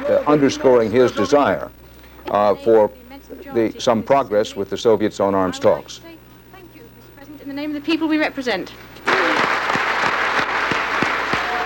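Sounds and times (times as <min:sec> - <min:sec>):
large crowd clapping: 0:00.0 - 0:01.2, 0:09.0 - 0:11.6
speech: 0:00.1 - 0:06.2, 0:07.5 - 0:08.9
cheers and whistles: 0:09.1 - 0:11.6.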